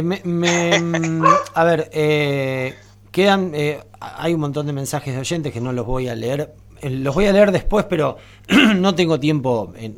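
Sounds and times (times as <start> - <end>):
speech: 0.0 - 9.9
female dog barking in drawn-out tonal yowls: 1.1 - 1.6.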